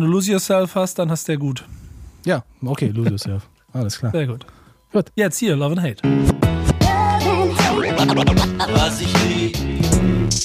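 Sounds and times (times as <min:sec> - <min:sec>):
speech: 0:00.0 - 0:06.3, 0:08.1 - 0:09.6
loud hip-hop backing track: 0:06.0 - 0:10.4
turntable scratches with pitch sweeps: 0:06.9 - 0:09.5
laughter: 0:07.7 - 0:09.1.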